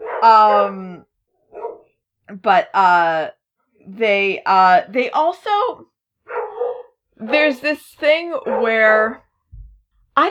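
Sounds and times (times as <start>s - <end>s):
dogs barking: 0.0s - 0.8s, 1.4s - 2.0s, 6.2s - 9.2s
speech: 0.2s - 1.1s, 2.4s - 5.9s, 7.2s - 9.2s.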